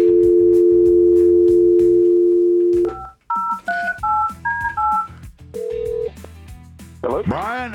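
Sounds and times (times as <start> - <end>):
telephone dial tone: 0.0 - 6.1
dual-pitched telephone keypad beeps dialing a number: 2.8 - 5.1.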